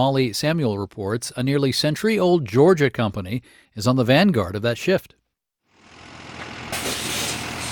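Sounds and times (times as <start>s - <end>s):
speech: 0.0s - 5.2s
big yellow diesel school bus rumbling as it pulls up: 5.8s - 7.7s
sharp loud hiss of school bus air brakes: 6.7s - 7.7s.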